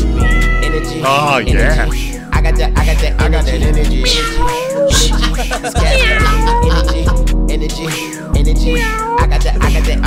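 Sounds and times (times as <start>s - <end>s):
cat meowing and yowling: 0.2s - 1.9s, 4.0s - 5.2s, 5.8s - 7.1s, 8.6s - 9.4s
laughter: 1.0s - 2.0s, 4.9s - 7.3s
speech: 1.1s - 10.0s.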